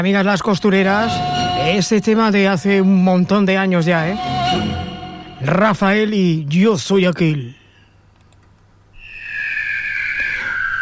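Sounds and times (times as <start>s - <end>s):
speech: 0.0s - 7.6s
high-pitched whistling bird call: 9.0s - 10.8s.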